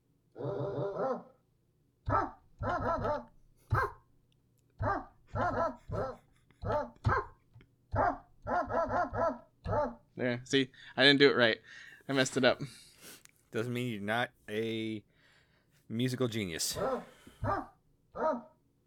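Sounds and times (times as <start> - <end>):
person imitating a dog barking with short loud yips: 0.4 - 1.3, 2.1 - 4.0, 4.8 - 10.0, 16.7 - 18.6
speech: 10.4 - 12.8, 13.5 - 15.1, 15.9 - 17.7.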